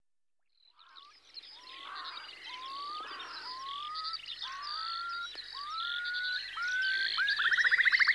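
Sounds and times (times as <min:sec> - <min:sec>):
songbird chatter: 0:00.6 - 0:08.1
Eurasian curlew song with rising whistles and bubbling trill: 0:02.5 - 0:08.1.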